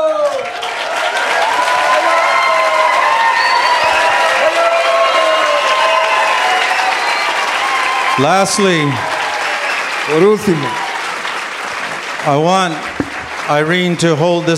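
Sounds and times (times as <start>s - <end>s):
dense wash of crowd clapping: 0.0s - 14.5s
many voices whooping and shouting: 0.9s - 11.0s
speech: 8.2s - 9.1s, 10.1s - 10.8s, 12.2s - 12.9s, 13.5s - 14.5s.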